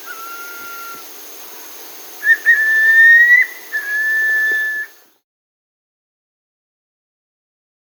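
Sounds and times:
striolated puffbird song of long clear whistles in South America: 0:00.0 - 0:05.1.

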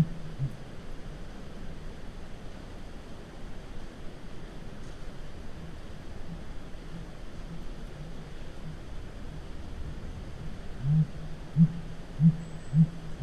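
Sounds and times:
blue grouse hooting in North America: 0:00.0 - 0:00.6, 0:10.8 - 0:13.2.

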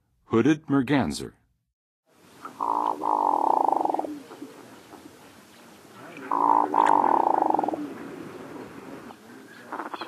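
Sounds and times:
Hooded Merganser calling in the Western USA: 0:02.3 - 0:10.0.

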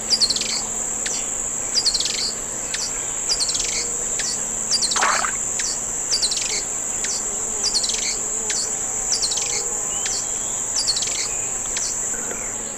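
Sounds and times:
Chloroceryle aenea song in South America eastern lowlands: 0:00.2 - 0:12.6.

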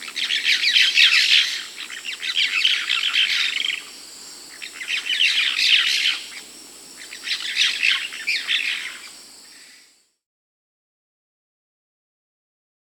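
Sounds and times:
cobalt-winged parakeet chatter in the Peruvian Amazon: 0:00.0 - 0:03.9, 0:04.5 - 0:09.1.

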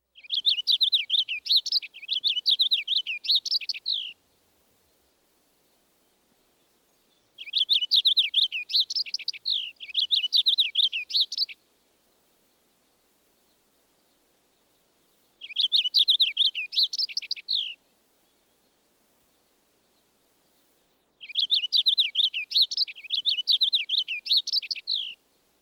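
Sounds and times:
purple finch singing warbling phrases: 0:00.2 - 0:04.2, 0:06.7 - 0:11.6, 0:15.4 - 0:17.8, 0:21.2 - 0:25.2.

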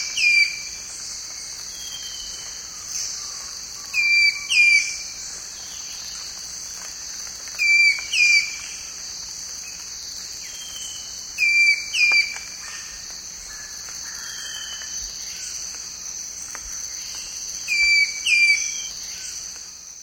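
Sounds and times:
constant high-pitched insect hum: 0:00.0 - 0:20.0
Eastern woodhaunter calling in paired whistled notes in the eastern lowlands of South America: 0:04.0 - 0:05.0, 0:11.4 - 0:12.8, 0:17.7 - 0:18.9.

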